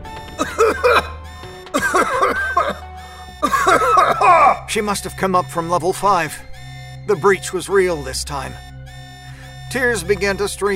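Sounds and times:
loud coughing brought on by a smell of rotten eggs: 0.4s - 1.2s, 1.8s - 2.8s, 3.4s - 4.7s
speech: 4.2s - 6.5s, 7.1s - 8.7s, 9.7s - 10.7s.

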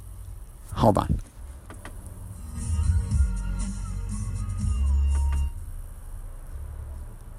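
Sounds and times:
speech: 0.8s - 1.3s
bass-heavy music from the stereo inside a car: 2.1s - 6.0s.

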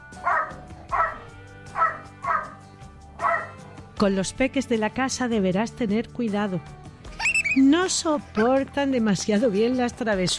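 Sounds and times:
small dog barking: 0.2s - 2.6s, 3.2s - 3.6s
speech: 4.0s - 6.8s, 7.6s - 10.3s.

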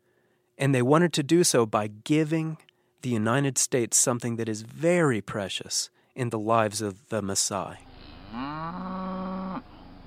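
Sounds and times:
speech: 0.6s - 8.9s
cow mooing: 7.9s - 9.8s.

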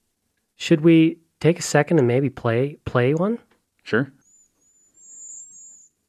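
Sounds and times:
speech: 0.6s - 4.2s
cedar waxwing calls: 4.2s - 6.0s.

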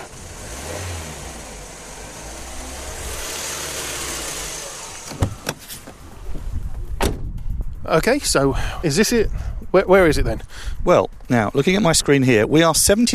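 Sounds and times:
tire hiss: 0.0s - 6.7s
car driving along a road: 0.0s - 7.4s
speech: 7.9s - 13.1s.

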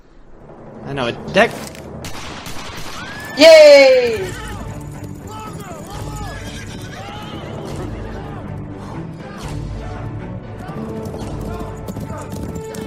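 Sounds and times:
speech: 0.9s - 1.8s, 3.4s - 4.4s
Western-style music: 1.3s - 12.8s
horse hooves clip-clopping: 4.2s - 7.5s, 10.6s - 12.8s
horse whinnying: 5.7s - 7.5s.

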